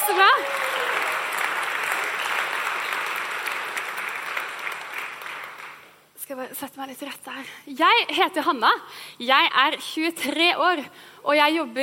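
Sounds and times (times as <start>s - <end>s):
audience applause: 0.0s - 6.0s
speech: 6.5s - 11.8s.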